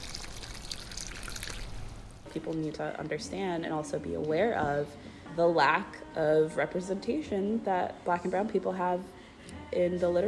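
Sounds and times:
water pouring while watering plants: 0.0s - 2.2s
speech: 2.3s - 10.2s.

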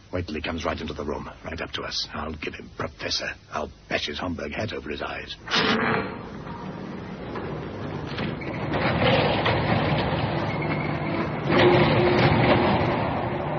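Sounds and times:
speech: 0.1s - 6.3s
steady mechanical rumble: 5.4s - 13.5s
door being rattled and tried: 5.6s - 13.5s.

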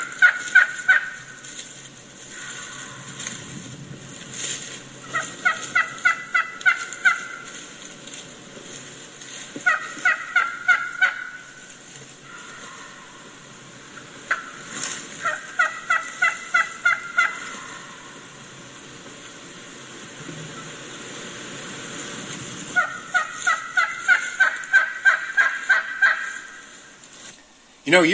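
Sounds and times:
wild turkey hen calling to gobbler: 0.0s - 1.6s, 2.3s - 3.4s, 5.0s - 7.7s, 9.5s - 20.8s, 22.7s - 27.0s
speech: 27.9s - 28.1s.

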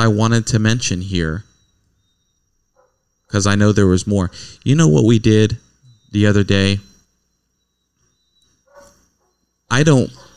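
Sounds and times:
speech: 0.0s - 1.5s, 3.3s - 6.9s, 9.7s - 10.2s
quiet hissy background: 0.0s - 10.3s
dog barking: 2.7s - 3.2s, 8.6s - 10.3s.

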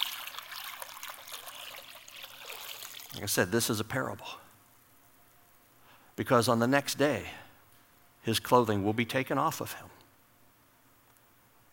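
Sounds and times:
water poured into a basin: 0.0s - 3.8s
speech: 3.1s - 4.4s, 6.2s - 7.4s, 8.2s - 9.9s.

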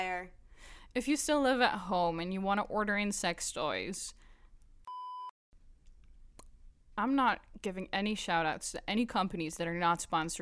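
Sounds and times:
speech: 0.0s - 4.2s, 7.0s - 10.4s
censor bleep over a brand name: 4.9s - 5.3s.

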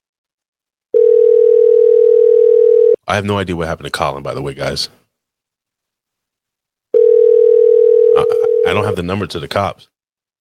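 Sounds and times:
electronic phone ringback tone: 1.0s - 3.0s, 7.0s - 8.8s
speech: 3.1s - 5.0s, 8.7s - 9.9s.

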